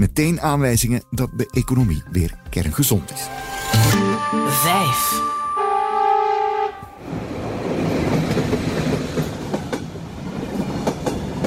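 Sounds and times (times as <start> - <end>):
speech: 0.0 - 5.4
train horn blaring: 3.9 - 7.2
train rolling along the rails: 6.7 - 11.4.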